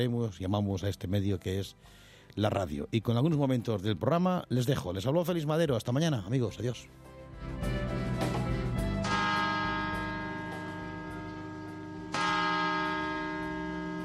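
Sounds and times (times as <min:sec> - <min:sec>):
speech: 0:00.0 - 0:07.9
Puerta del Sol clock tower bells chiming eight o'clock: 0:09.0 - 0:14.0.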